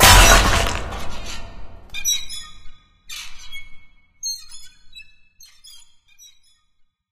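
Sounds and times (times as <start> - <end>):
dropper break: 0.0 - 2.0.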